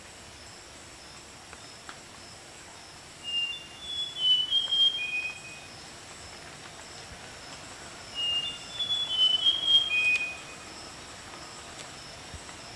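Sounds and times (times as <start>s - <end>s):
Rusty mouse-warbler giving whistled phrases: 3.3s - 5.6s, 8.2s - 10.6s.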